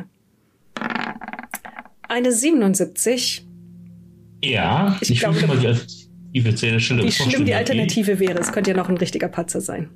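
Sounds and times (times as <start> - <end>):
dice rolling across a hard surface: 0.8 - 1.9
speech: 2.1 - 3.5, 4.4 - 9.9.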